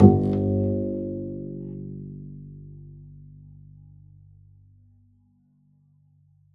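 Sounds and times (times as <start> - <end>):
double bass pizzicato G1: 0.0 - 1.4.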